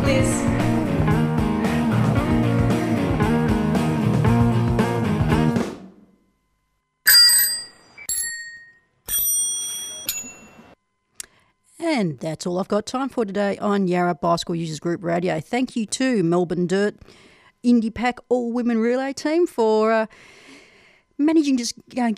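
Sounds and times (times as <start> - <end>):
music: 0.0 - 6.2
speech: 0.1 - 0.8, 12.0 - 20.4, 21.2 - 22.1
bright bell ringing: 7.1 - 10.8.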